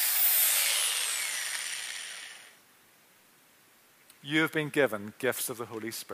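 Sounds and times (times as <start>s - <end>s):
power drill drilling holes with a bright hissing whine: 0.0s - 2.6s
speech: 4.2s - 6.1s.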